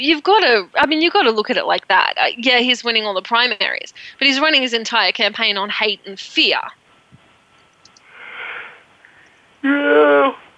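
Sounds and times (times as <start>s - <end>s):
speech: 0.0s - 6.8s, 9.6s - 10.4s
person yawning with a loud voiced groaning exhale: 9.6s - 10.4s.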